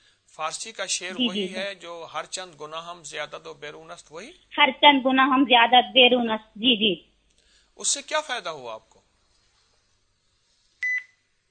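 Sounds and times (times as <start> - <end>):
speech: 0.4 - 7.1, 7.8 - 9.0
phone call disconnect beep: 10.8 - 11.1.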